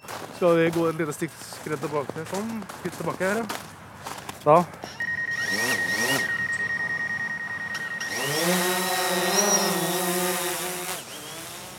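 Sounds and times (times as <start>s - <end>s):
speech: 0.4s - 3.7s, 4.4s - 5.7s
small camera drone rotors buzzing during takeoff: 4.8s - 11.7s
camera drone mechanical chirps: 4.9s - 10.3s.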